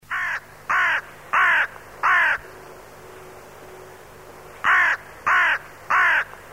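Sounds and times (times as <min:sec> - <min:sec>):
crow giving rough grating caws: 0:00.1 - 0:02.5, 0:04.6 - 0:06.5.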